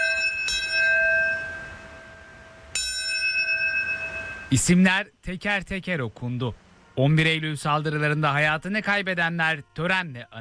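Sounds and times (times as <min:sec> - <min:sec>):
bells ringing at a memorial ceremony: 0:00.0 - 0:04.8
speech: 0:04.5 - 0:10.3.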